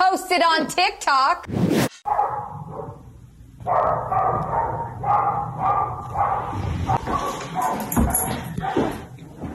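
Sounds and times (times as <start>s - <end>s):
speech: 0.3s - 1.8s
dog barking: 2.0s - 3.0s, 3.6s - 9.1s
shuffling noises: 6.8s - 9.5s.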